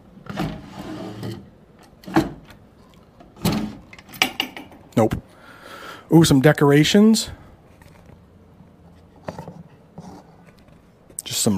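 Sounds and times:
wooden dresser drawers sliding open and shut: 0.2 - 2.6, 3.2 - 4.8
speech: 5.0 - 5.3, 6.1 - 7.4.

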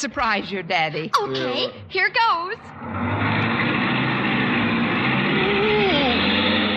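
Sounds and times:
speech: 0.0 - 3.4
car engine starting and revving: 2.6 - 6.7.

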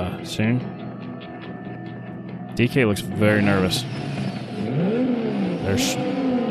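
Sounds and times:
speech: 0.2 - 0.8, 2.6 - 4.8, 5.7 - 6.3
Mustang with RB26 engine revving: 3.0 - 6.4.

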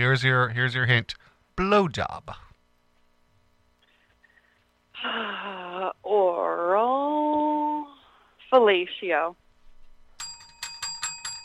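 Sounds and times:
speech: 0.0 - 2.5, 5.0 - 7.2, 8.5 - 9.4
bright metallic bell ringing for correct answer: 10.2 - 11.4.

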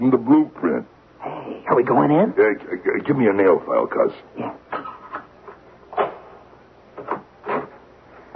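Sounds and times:
speech: 0.0 - 0.9, 1.8 - 4.6
door clunks and scrapes: 7.0 - 7.8.

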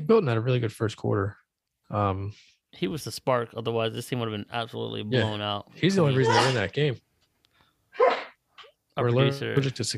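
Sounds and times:
speech: 0.1 - 7.0, 9.0 - 9.9
person sneezing: 6.2 - 6.6, 8.0 - 8.4.

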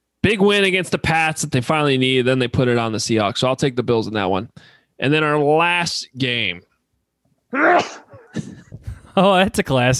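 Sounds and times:
speech: 0.3 - 6.7, 7.5 - 8.6, 9.2 - 9.9
man sneezing: 7.5 - 8.6.

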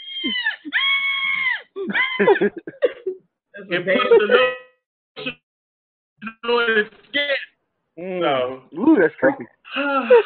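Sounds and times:
muffled scream: 0.0 - 1.7
speech: 0.2 - 0.7, 1.9 - 2.9, 3.7 - 4.6, 6.4 - 10.2
laughter: 1.8 - 3.2, 3.8 - 4.5, 9.8 - 10.2.

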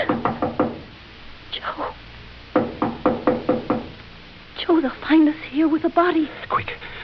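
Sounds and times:
loud knocking on a door: 0.0 - 0.9, 2.5 - 4.0
speech: 5.1 - 6.9.

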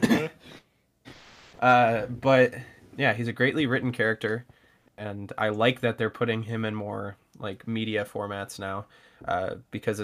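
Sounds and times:
person clearing their throat: 0.0 - 0.6
person coughing: 0.0 - 0.6
speech: 1.6 - 10.0.

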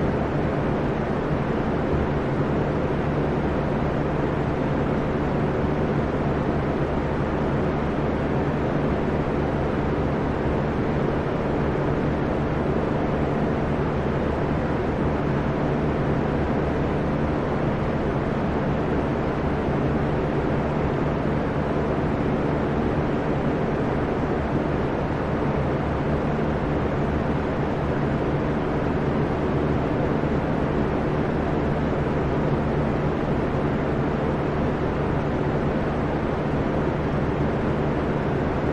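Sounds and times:
faint droning hum tones: 0.0 - 38.7
steady white noise with deep rumbling low end: 0.0 - 38.7.

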